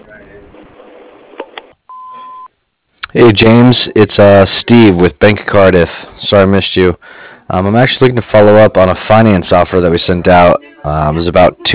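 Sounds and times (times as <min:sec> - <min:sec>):
answering machine beep: 0:01.9 - 0:02.5
speech: 0:03.1 - 0:11.7
faint answering machine greeting: 0:10.0 - 0:11.7.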